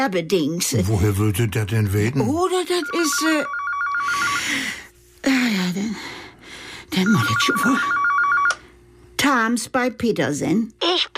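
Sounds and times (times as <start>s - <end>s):
speech: 0.0s - 6.2s, 6.9s - 8.0s, 9.3s - 11.1s
telephone ringing with an electronic warbling tone: 2.6s - 4.8s, 6.9s - 8.8s.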